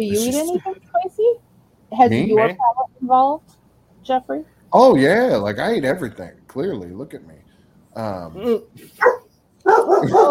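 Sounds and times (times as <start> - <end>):
speech: 0.0 - 7.4, 8.0 - 9.2, 9.9 - 10.3
dogs barking and yelping: 9.0 - 10.3.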